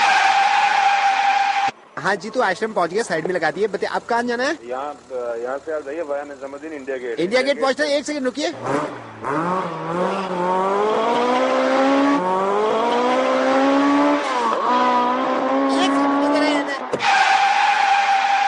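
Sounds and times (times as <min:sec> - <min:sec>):
car tires screeching: 0:00.0 - 0:01.8, 0:08.4 - 0:18.4
speech: 0:02.0 - 0:10.1
car speeding past: 0:08.6 - 0:16.3.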